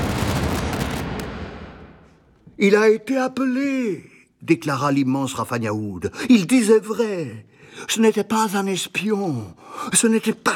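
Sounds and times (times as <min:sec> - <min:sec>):
explosion with low rumble and crackling: 0:00.0 - 0:02.4
speech: 0:02.6 - 0:10.5.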